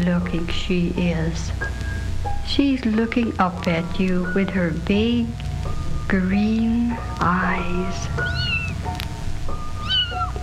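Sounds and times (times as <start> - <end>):
speech: 0.0 - 1.9, 2.5 - 5.4, 6.1 - 8.5
low steady rumble: 0.0 - 10.4
kitten meowing: 6.4 - 9.0, 9.7 - 10.4.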